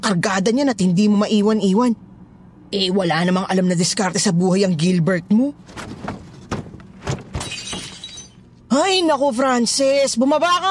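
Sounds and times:
speech: 0.0 - 2.1, 2.7 - 6.1, 8.8 - 10.6
something smashing and breaking in a home: 5.6 - 8.4.

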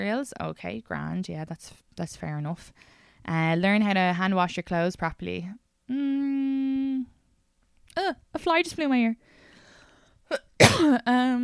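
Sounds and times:
speech: 0.0 - 7.2, 8.0 - 9.3, 10.3 - 11.4
person coughing into the microphone: 10.3 - 11.1.

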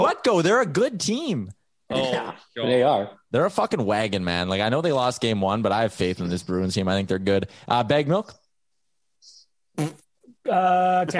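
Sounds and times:
speech: 0.0 - 8.4, 9.2 - 11.1
loud fart noises: 9.8 - 10.3.

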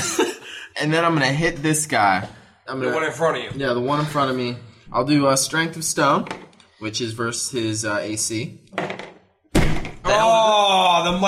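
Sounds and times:
people laughing: 0.0 - 0.6
speech: 0.8 - 8.9, 10.1 - 11.2
person slamming their head onto a tabletop: 8.8 - 10.1.

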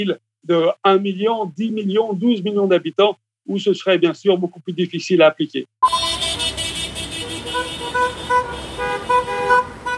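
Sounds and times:
speech: 0.0 - 6.0
many car horns honking during a street protest: 5.8 - 9.9
steady rumble of busy street traffic: 5.8 - 9.9.

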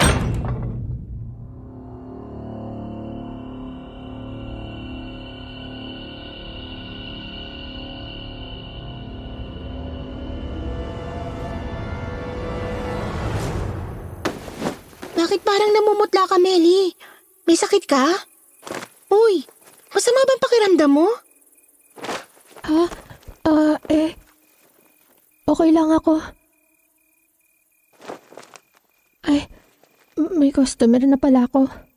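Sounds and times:
door slamming shut: 0.0 - 0.9
low sustained tonal drone: 1.2 - 14.2
speech: 15.3 - 21.2, 22.0 - 24.2, 25.5 - 26.4, 29.2 - 29.6, 30.2 - 31.8.

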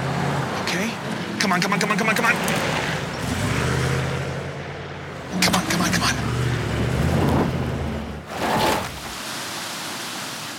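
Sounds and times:
speech: 0.7 - 3.0
car engine straining and revving on a steep mountain road: 2.2 - 8.6
car wheels churning through icy slushy water: 8.2 - 10.5.

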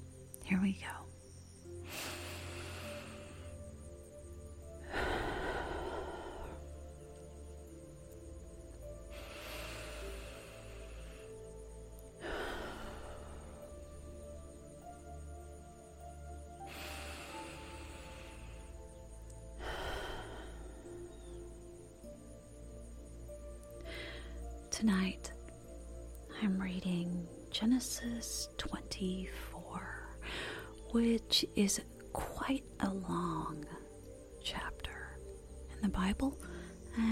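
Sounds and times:
speech: 0.5 - 1.1, 24.8 - 25.3, 26.4 - 29.9, 30.9 - 33.8, 35.8 - 37.1
slow deep breathing: 1.8 - 7.7, 8.4 - 14.5, 16.6 - 21.8, 23.8 - 24.6, 30.2 - 30.8.

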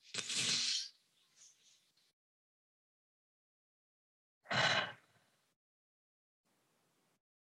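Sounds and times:
deep breathing in and out: 4.5 - 5.4.

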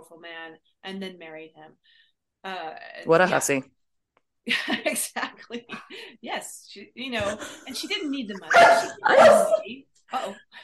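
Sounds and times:
speech: 0.0 - 3.8, 4.4 - 10.6
dog barking: 8.4 - 9.7.

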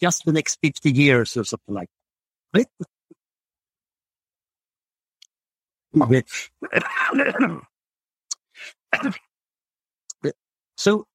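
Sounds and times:
speech: 0.0 - 3.0, 5.9 - 7.7, 8.6 - 9.3, 10.2 - 11.1
person clearing throat: 6.6 - 7.7, 8.9 - 9.3
person coughing: 6.6 - 7.7, 8.9 - 9.3.

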